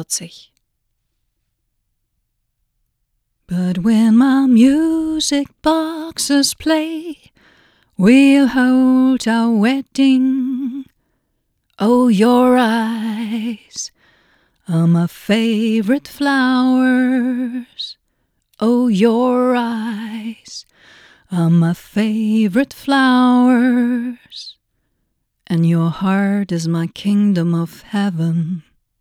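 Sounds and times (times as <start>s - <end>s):
person singing into an Audio Technica BP40 microphone: 3.5s - 7.3s, 8.0s - 10.9s, 11.8s - 14.0s, 14.7s - 18.0s, 18.6s - 20.7s, 21.3s - 24.6s, 25.5s - 28.7s.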